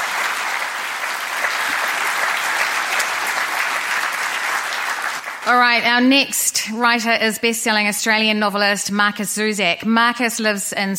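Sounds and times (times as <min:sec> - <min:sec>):
festival audience applause after a writer's session: 0:00.0 - 0:05.8
speech: 0:05.5 - 0:10.9.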